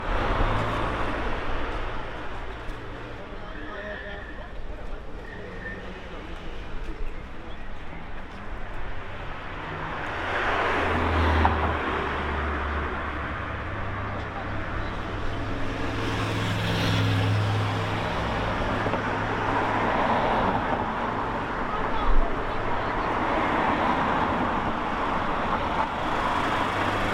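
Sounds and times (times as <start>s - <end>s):
harbour traffic: 0.0s - 27.1s.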